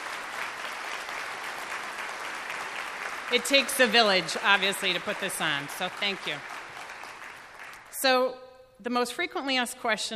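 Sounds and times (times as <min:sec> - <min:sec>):
audience applause: 0:00.0 - 0:08.0
speech: 0:03.3 - 0:06.5, 0:08.0 - 0:10.1.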